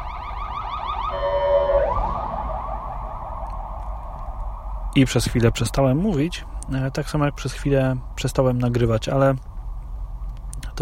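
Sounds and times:
ambulance siren wailing: 0:00.0 - 0:05.2
low rumble of traffic: 0:00.0 - 0:10.8
speech: 0:05.0 - 0:09.5.

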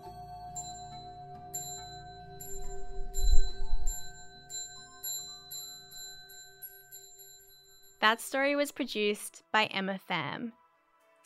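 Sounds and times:
great bell ringing: 0:00.0 - 0:08.0
heavy low rumble: 0:02.6 - 0:04.3
speech: 0:08.0 - 0:10.6.

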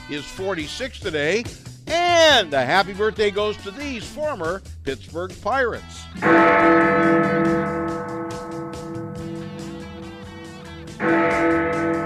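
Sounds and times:
speech: 0:00.1 - 0:07.6
bells ringing: 0:06.2 - 0:12.0.

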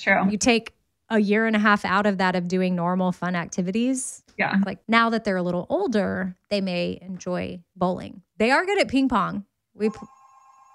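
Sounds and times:
speech: 0:00.0 - 0:10.2
electronic telephone ringing: 0:09.8 - 0:10.7.

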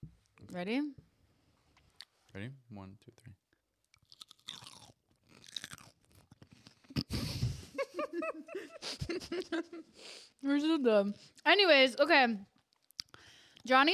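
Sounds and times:
speech: 0:00.5 - 0:01.0, 0:02.3 - 0:03.4, 0:08.0 - 0:12.5, 0:13.6 - 0:13.9
crisp bites and crunches into a fresh cucumber: 0:04.0 - 0:06.7
people laughing: 0:07.1 - 0:09.9.

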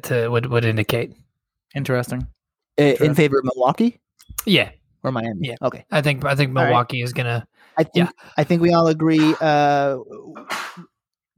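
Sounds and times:
speech: 0:00.0 - 0:10.9
person sneezing: 0:09.2 - 0:09.4, 0:10.3 - 0:10.9.

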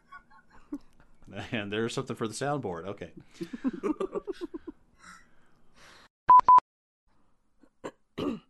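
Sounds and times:
speech: 0:01.4 - 0:04.6
person coughing: 0:07.8 - 0:08.4.

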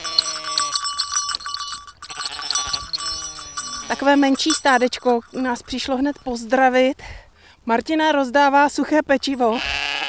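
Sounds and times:
faint bell-like tinkling: 0:00.0 - 0:07.0
speech: 0:03.9 - 0:09.8
small flock of Cameroon sheep bleating at a pasture in the Bohemian Karst, Czech Republic: 0:09.5 - 0:10.0.

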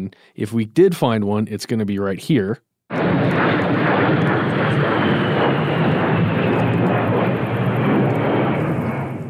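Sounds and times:
speech: 0:00.0 - 0:06.0
A-10 Warthog jet aircraft passing overhead: 0:02.9 - 0:09.2.

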